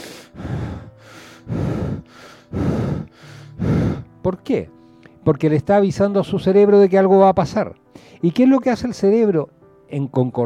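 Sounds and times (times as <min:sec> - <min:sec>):
person imitating the rasping breathing of a predator stalking prey: 0:00.0 - 0:04.1
speech: 0:04.3 - 0:10.4.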